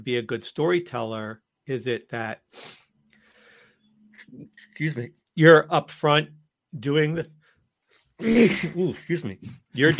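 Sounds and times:
speech: 0.0 - 2.8, 4.2 - 9.9
forceful sneeze: 8.2 - 8.8.

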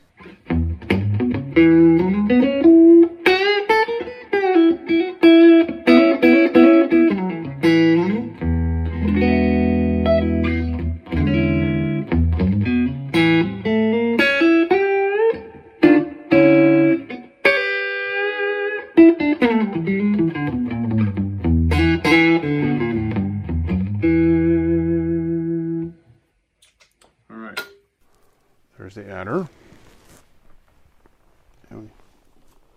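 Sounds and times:
warm electric guitar with neck pickup through an amp with reverb: 0.1 - 26.0.

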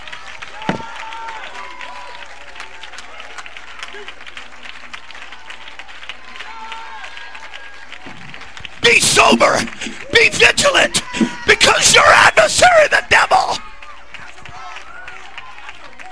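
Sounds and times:
large crowd clapping: 0.0 - 16.0
faint voices: 8.8 - 14.9.

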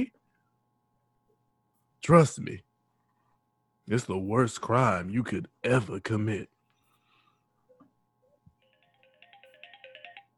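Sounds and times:
speech: 2.1 - 2.7, 3.9 - 6.5
mobile phone ringtone with beeping electronic melody: 8.6 - 10.3.

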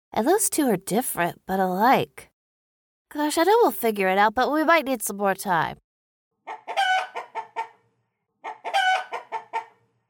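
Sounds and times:
speech: 0.1 - 2.3, 3.1 - 5.8
chicken clucking: 6.5 - 9.9.

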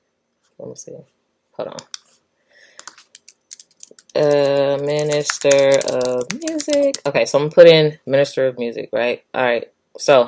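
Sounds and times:
speech: 0.6 - 1.9, 4.2 - 10.2
typing a keyword on a computer keyboard: 2.8 - 7.1.

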